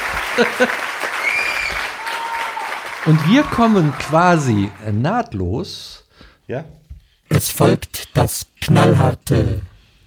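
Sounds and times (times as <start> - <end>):
dense applause: 0.0 - 5.0
speech: 0.4 - 1.0, 3.0 - 6.8, 7.4 - 9.7.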